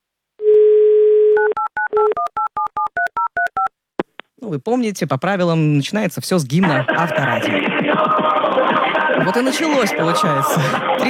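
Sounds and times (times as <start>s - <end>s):
telephone dial tone: 0.4s - 3.7s
speech: 4.5s - 11.0s.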